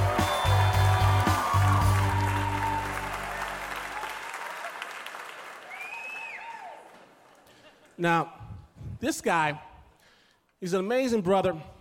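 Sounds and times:
large live theater audience clapping and cheering: 0.0 - 7.6
speech: 8.0 - 8.4, 9.0 - 9.7, 10.6 - 11.7.

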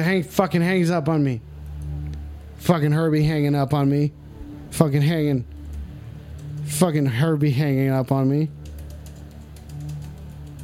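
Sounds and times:
speech: 0.0 - 1.5, 2.6 - 5.6, 6.7 - 8.6
steady low hum: 0.0 - 10.6
typing on a computer keyboard: 5.6 - 6.8, 8.5 - 10.6.

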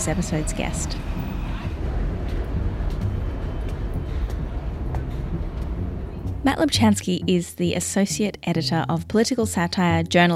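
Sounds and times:
speech: 0.0 - 1.3, 6.4 - 10.3
moving train rumble heard from inside a carriage from Broadway to Queens New York: 0.0 - 8.2.

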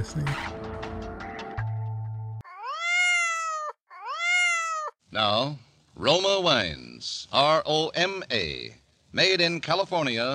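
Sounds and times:
speech: 0.0 - 0.8, 5.1 - 10.3
vocal sound-effects artist imitating a cat meowing: 2.4 - 5.0.

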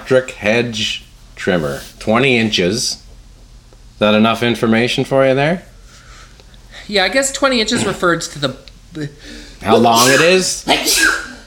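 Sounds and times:
speech: 0.1 - 3.0, 4.0 - 5.7, 6.9 - 11.3
person sneezing: 7.8 - 8.0, 9.7 - 11.4.

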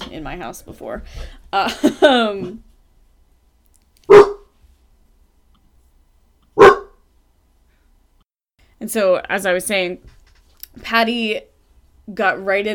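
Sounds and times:
speech: 0.1 - 2.7, 8.8 - 10.2, 10.8 - 11.5, 12.1 - 12.7
dog barking: 4.1 - 4.5, 6.6 - 7.0.

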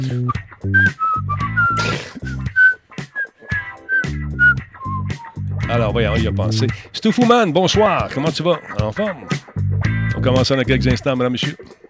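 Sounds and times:
bright whistled melody: 0.0 - 5.6
steady instrumental accompaniment: 0.4 - 10.6
speech: 5.7 - 9.4, 10.2 - 11.7.

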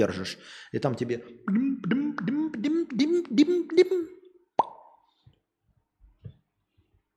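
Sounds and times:
speech: 0.0 - 2.8
rhythmic pulsing vocal sounds: 0.0 - 4.3
mouth pop imitating an injector pen clicking: 4.6 - 5.0.

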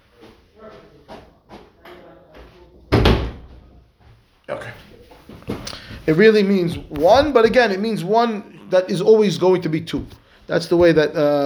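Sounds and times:
room noise: 0.0 - 11.4
door pushed shut with a loud thump: 2.9 - 3.6
speech: 4.5 - 4.9, 6.1 - 11.4.

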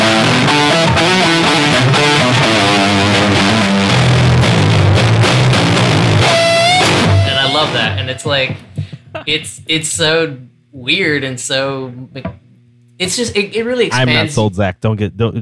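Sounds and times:
heavily distorted electric guitar playing chunky rhythmic chords after cab: 0.0 - 8.9
speech: 7.8 - 12.4, 13.0 - 15.4.

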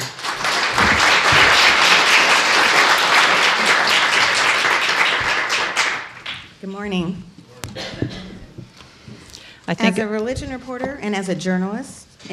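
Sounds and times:
room full of people applauding: 0.0 - 6.6
speech: 6.7 - 7.3, 9.7 - 12.3.

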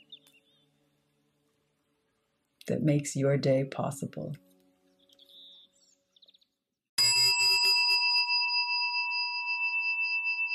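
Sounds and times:
speech: 2.7 - 4.5
bright meditation chime ringing: 7.0 - 10.5.

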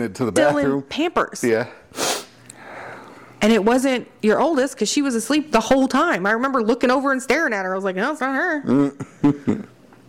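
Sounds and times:
speech: 0.0 - 1.8, 3.4 - 9.7
person sneezing: 2.0 - 2.4.

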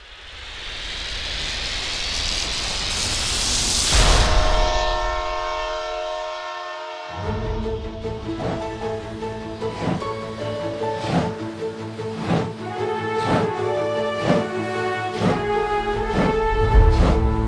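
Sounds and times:
rail noise: 0.0 - 17.4
train rumbling past: 0.0 - 17.4
train whistle long steady tonal blast: 4.0 - 7.7, 12.7 - 17.4.

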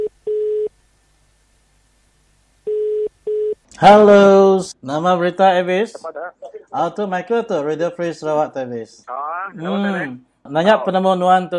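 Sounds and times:
ringing tone of an outgoing telephone call: 2.7 - 3.6
speech: 3.8 - 11.5.

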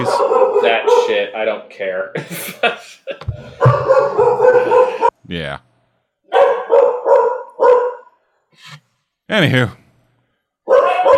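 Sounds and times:
dogs barking: 0.0 - 1.4, 3.4 - 5.2, 6.3 - 8.2, 10.6 - 11.1
speech: 0.0 - 4.3, 5.3 - 5.7, 9.3 - 9.8
laughter: 2.1 - 5.1.

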